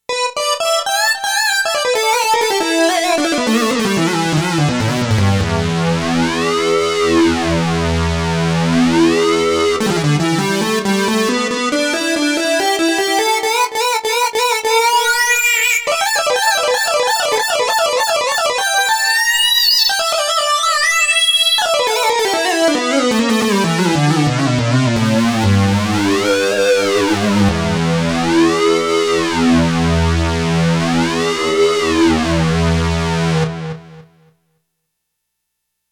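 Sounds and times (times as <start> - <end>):
Roland JX-1 synthesizer lead factory preset: 0.4 - 33.8.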